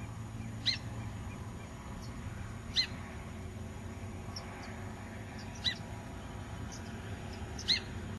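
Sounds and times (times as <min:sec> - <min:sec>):
Hudsonian godwit calls: 0:00.0 - 0:02.1, 0:02.7 - 0:03.0, 0:05.3 - 0:05.9, 0:06.7 - 0:08.0
faint softer chirps: 0:00.0 - 0:03.1, 0:03.9 - 0:05.9, 0:06.6 - 0:08.0
steady low rumble: 0:00.0 - 0:08.1.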